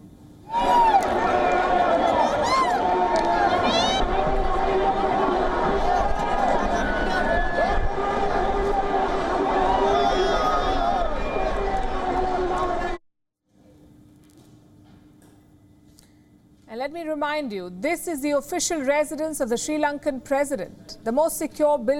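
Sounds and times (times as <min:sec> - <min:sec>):
large protest crowd shouting while storming a palace: 0:00.5 - 0:13.0
speech: 0:17.4 - 0:21.9.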